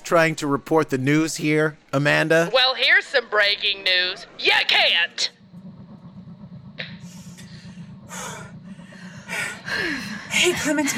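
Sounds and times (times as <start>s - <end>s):
speech: 0.1s - 5.4s, 9.4s - 10.9s
low steady hum: 1.0s - 10.9s
people breathing heavily, out of breath after a physical fight: 6.7s - 10.9s.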